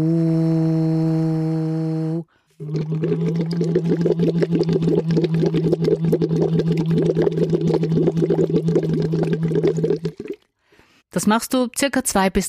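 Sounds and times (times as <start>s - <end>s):
speech: 0.0s - 0.4s, 2.9s - 5.0s, 11.2s - 12.4s
person humming a sustained tone as a voice exercise: 0.0s - 6.5s
voice blown through a tube into water bubbling: 2.6s - 10.5s.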